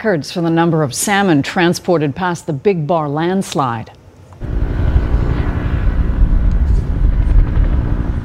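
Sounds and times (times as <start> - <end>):
speech: 0.0 - 4.6
helicopter rotor blades thumping: 4.4 - 8.2.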